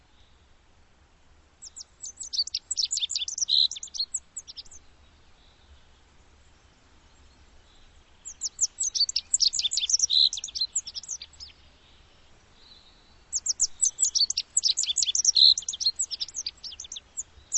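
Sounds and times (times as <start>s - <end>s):
bird song of rapid high thin twittering notes: 1.6s - 4.8s, 8.2s - 11.6s, 13.3s - 17.5s.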